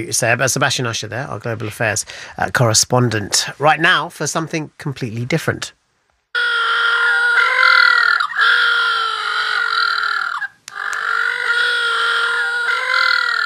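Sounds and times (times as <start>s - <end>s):
speech: 0.0s - 5.8s
little blue penguins calling in harsh braying tones: 6.4s - 13.4s.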